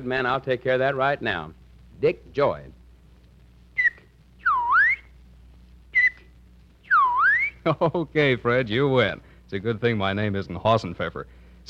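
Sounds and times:
speech: 0.0s - 2.8s, 7.6s - 11.6s
man whistling: 3.8s - 5.1s, 5.9s - 7.6s.

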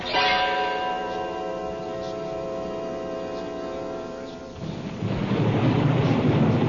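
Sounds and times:
droning hum: 0.0s - 6.6s
thunder rumbling from an approaching storm: 4.4s - 6.6s.

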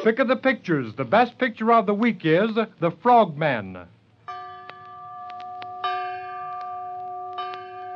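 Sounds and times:
speech: 0.0s - 4.0s
resonant bell struck: 4.3s - 7.9s.

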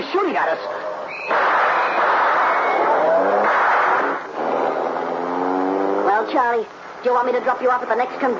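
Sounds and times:
speech: 0.1s - 1.5s, 6.3s - 8.3s
car engine roaring as car speeds away through gear changes: 1.3s - 7.0s.

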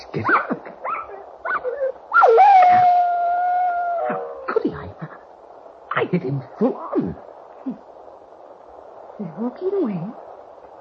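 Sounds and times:
speech: 0.1s - 0.4s, 6.1s - 7.3s, 9.4s - 10.2s
dog yelping: 0.3s - 3.0s
dog howling: 0.4s - 4.5s
dog whimpering: 0.8s - 2.0s.

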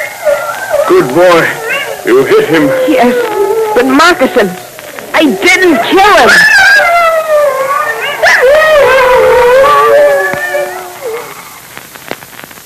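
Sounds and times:
several wolves howling together: 0.0s - 11.7s
faint clicks: 0.2s - 1.2s, 4.5s - 5.2s, 10.3s - 12.6s
speech: 0.9s - 4.6s, 5.2s - 7.0s.

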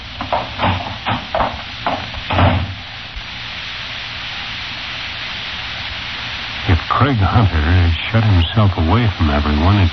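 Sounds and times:
faint steady hiss: 0.0s - 9.9s
knocking on a door: 0.2s - 2.8s
speech: 7.0s - 9.9s.

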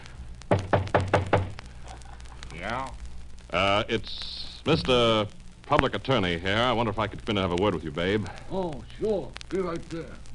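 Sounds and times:
firm knocks on a door: 0.5s - 1.6s
speech: 2.6s - 10.2s.

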